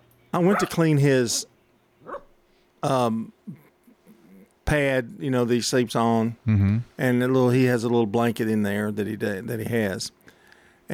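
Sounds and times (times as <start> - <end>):
dog barking: 0.4 - 0.8, 2.0 - 2.3
speech: 0.4 - 1.5, 2.8 - 3.6, 4.7 - 10.2.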